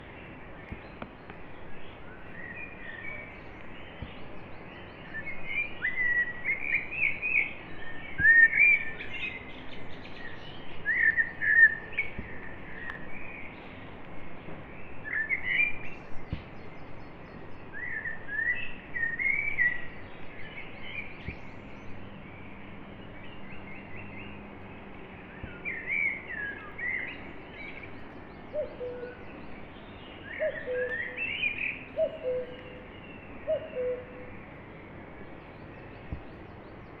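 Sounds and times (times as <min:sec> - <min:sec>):
birds in a forest: 0:00.0 - 0:36.9
cuckoo calling: 0:28.5 - 0:29.3, 0:30.3 - 0:34.3.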